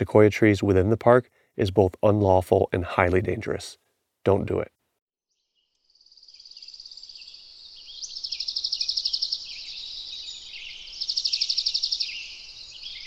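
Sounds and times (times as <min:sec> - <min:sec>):
speech: 0:00.0 - 0:04.8
birdsong with rapid buzzy trills in a sequoia forest: 0:05.3 - 0:13.0.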